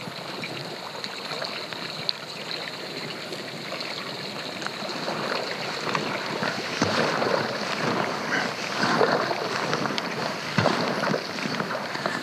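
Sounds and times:
paddle strokes in calm water of Yellowstone Lake: 0.0 - 12.2
slight breeze hissing faintly: 0.0 - 12.2.

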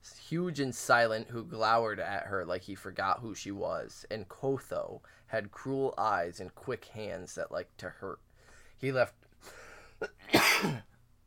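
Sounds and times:
speech: 0.3 - 10.9
person making an exaggerated fake sneeze: 10.0 - 10.9.

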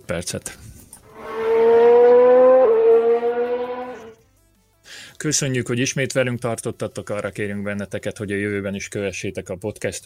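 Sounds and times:
speech: 0.1 - 0.7, 5.2 - 10.0
race car driving past with engine whine: 1.1 - 4.1.

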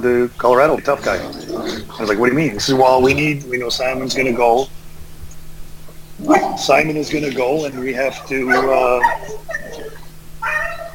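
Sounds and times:
speech: 0.0 - 4.8, 6.2 - 9.6
dog barking and whimpering excitedly: 6.2 - 6.8, 7.6 - 10.9.

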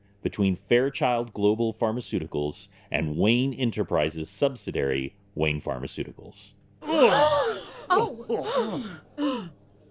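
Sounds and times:
speech: 0.2 - 7.4, 8.0 - 9.3
overlapping voiced exclamations: 6.8 - 9.5
boardroom audience gasping in shock: 6.8 - 9.6.

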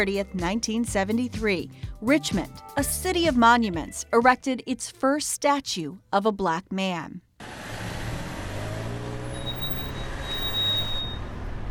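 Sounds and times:
speech: 0.0 - 7.6
stop-and-go city street traffic with low rumbling engine hum: 7.4 - 11.6
vehicle idling and pulling away: 7.4 - 11.6
faint high whine: 9.3 - 11.4.

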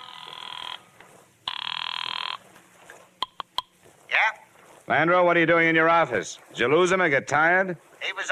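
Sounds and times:
telephone ringing with a rapid metallic trill: 0.0 - 2.4
speech: 4.9 - 8.3.

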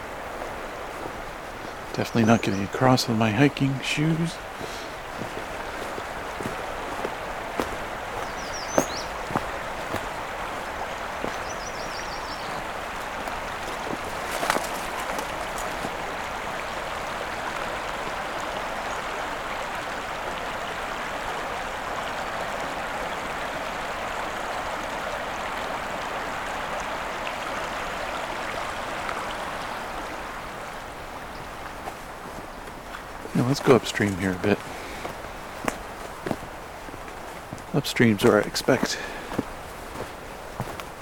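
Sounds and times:
fast-flowing river water rushing: 0.0 - 40.9
speech: 2.0 - 5.4, 33.7 - 34.7, 37.8 - 39.2
bird chirps: 8.2 - 9.4, 11.2 - 12.6.

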